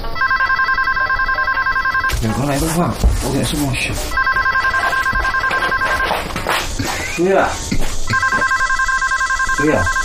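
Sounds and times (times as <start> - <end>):
telephone ringing with an electronic trill: 0.1 - 2.1, 4.1 - 6.1, 8.1 - 10.0
footsteps shuffling: 1.9 - 8.9
speech: 2.2 - 4.3, 7.2 - 7.8, 9.6 - 10.0.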